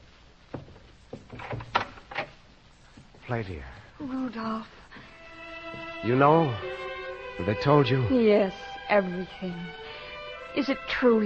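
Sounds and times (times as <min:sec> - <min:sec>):
soft rustling swing of a door opening: 0:00.6 - 0:02.4
speech: 0:03.3 - 0:04.8, 0:06.0 - 0:06.7, 0:07.4 - 0:09.8, 0:10.6 - 0:11.2.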